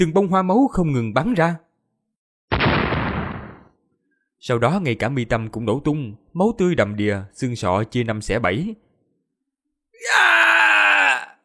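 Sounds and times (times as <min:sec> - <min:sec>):
speech: 0:00.0 - 0:01.6, 0:04.4 - 0:08.8, 0:10.0 - 0:10.8
creature screaming and howling in agony: 0:10.0 - 0:11.4.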